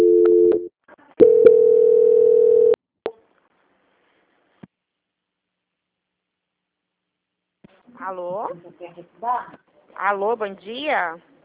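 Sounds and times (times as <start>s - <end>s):
electronic telephone transfer tones on a bank call: 1.2s - 2.8s
speech: 8.1s - 11.3s.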